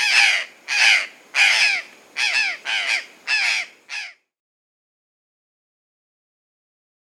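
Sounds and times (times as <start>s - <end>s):
purplish jay calling in South America: 0.0s - 4.2s.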